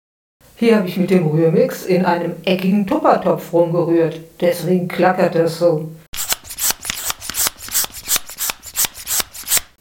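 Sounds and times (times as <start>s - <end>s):
speech: 0.6s - 6.0s
hand air pump worked in quick steady strokes: 6.1s - 9.8s.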